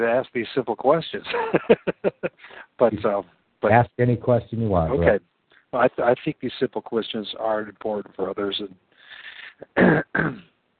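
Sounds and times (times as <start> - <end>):
speech: 0.0 - 10.5
laughter: 1.3 - 3.2
person clearing throat: 9.5 - 10.5
person coughing: 9.6 - 10.5.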